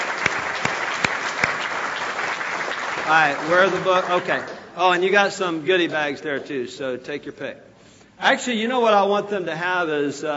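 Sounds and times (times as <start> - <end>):
audience applause at a live book event: 0.0 - 4.7
speech: 3.1 - 10.3.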